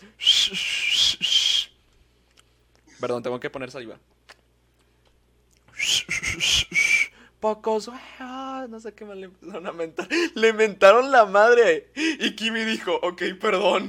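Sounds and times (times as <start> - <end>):
person whistling imitating crowd jeering: 0.2 - 1.8, 5.7 - 7.2
speech: 3.0 - 4.2, 7.4 - 13.8.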